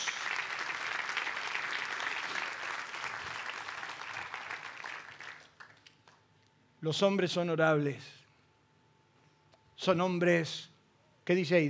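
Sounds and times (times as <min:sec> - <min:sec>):
congregation applauding: 0:00.0 - 0:05.9
speech: 0:06.8 - 0:08.2, 0:09.8 - 0:11.6.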